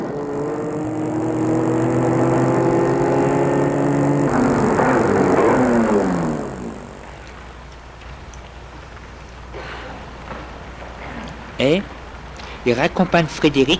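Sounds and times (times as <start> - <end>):
car engine humming as the vehicle maneuvers to park: 0.0 - 11.0
speech: 11.6 - 11.9, 12.7 - 13.7.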